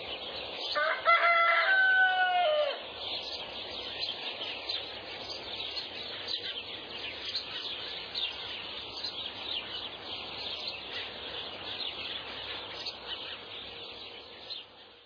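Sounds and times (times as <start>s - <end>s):
chorus of small birds chirping: 0.0s - 15.0s
rooster crowing at dawn: 0.8s - 2.8s.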